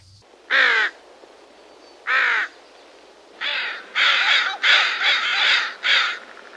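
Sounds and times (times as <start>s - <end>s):
northwestern crow cawing: 0.5s - 1.0s, 2.1s - 2.6s, 3.4s - 6.4s.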